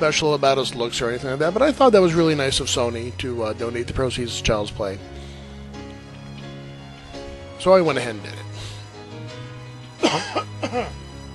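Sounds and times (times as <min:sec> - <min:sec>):
speech: 0:00.0 - 0:05.2, 0:07.6 - 0:08.4, 0:10.1 - 0:11.0
person coughing: 0:10.0 - 0:11.0
throat clearing: 0:10.0 - 0:11.0.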